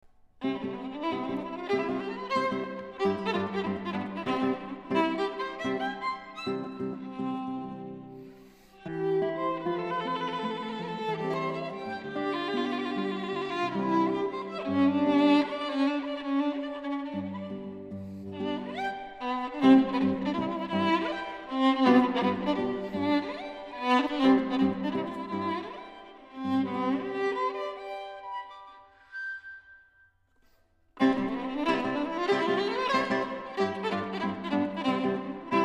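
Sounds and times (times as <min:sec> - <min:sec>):
guitar: 0:00.4 - 0:28.9, 0:31.0 - 0:35.6
violin: 0:00.4 - 0:29.8, 0:31.0 - 0:35.6.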